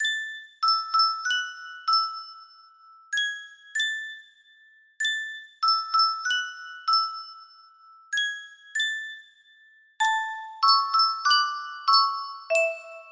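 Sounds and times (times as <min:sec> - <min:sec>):
Yunsheng music box melody: 0:00.0 - 0:13.1.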